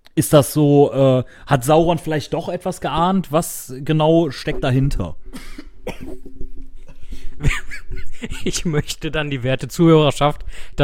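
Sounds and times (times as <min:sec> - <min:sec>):
speech: 0:00.2 - 0:06.4, 0:07.4 - 0:10.8
unwell man coughing: 0:05.3 - 0:07.2
laughter: 0:06.8 - 0:09.0.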